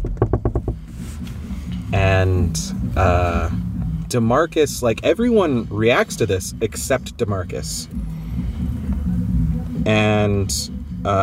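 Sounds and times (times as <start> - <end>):
sharp knocking from upstairs: 0.0 - 0.8
low rumble: 0.0 - 11.2
speech: 1.9 - 8.1, 9.8 - 11.2.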